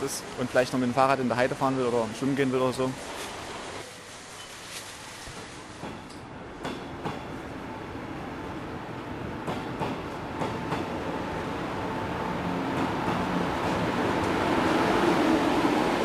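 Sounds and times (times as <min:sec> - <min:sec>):
speech: 0:00.0 - 0:03.4
train rumbling through a station: 0:05.1 - 0:16.0.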